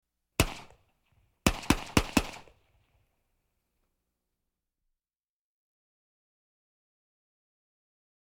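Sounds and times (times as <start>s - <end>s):
several M14 rifle gunshots in a jungle: 0.4s - 0.8s, 1.4s - 2.7s.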